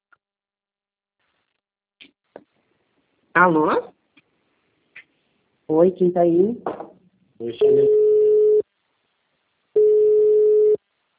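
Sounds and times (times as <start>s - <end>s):
speech: 3.4s - 3.9s, 5.7s - 6.7s, 7.4s - 8.0s
phone busy tone after a dropped call: 7.6s - 8.6s, 9.8s - 10.8s.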